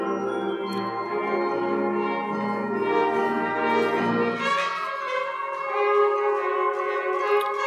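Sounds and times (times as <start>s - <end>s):
bell-like chiming tones: 0.0s - 5.7s
dense sustained musical passage: 0.0s - 7.6s.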